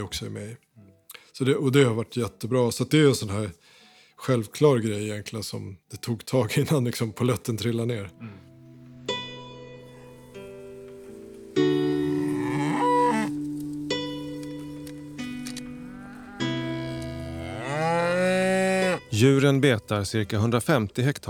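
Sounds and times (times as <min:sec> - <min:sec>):
speech: 0:00.0 - 0:00.7, 0:01.4 - 0:08.5, 0:19.2 - 0:21.2
cows mooing on a farm in Sweden: 0:11.6 - 0:14.8, 0:15.6 - 0:19.2.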